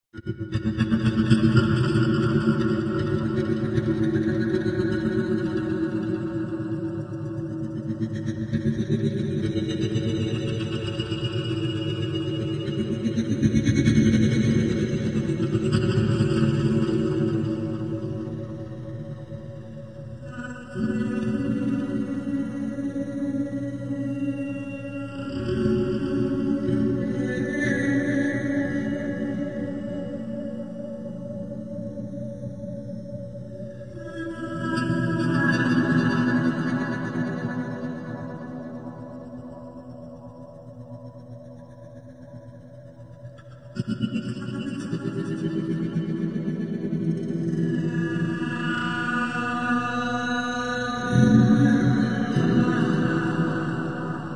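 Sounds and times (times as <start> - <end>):
oscillating looping ambience soundtrack: 0.4 - 54.3.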